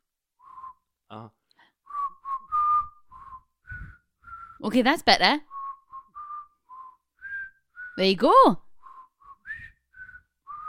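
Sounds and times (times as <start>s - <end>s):
person whistling a short wobbly melody: 0.4s - 0.9s, 1.8s - 4.6s, 5.5s - 8.0s, 8.8s - 10.6s
speech: 1.1s - 1.4s, 4.6s - 5.5s, 8.0s - 8.6s.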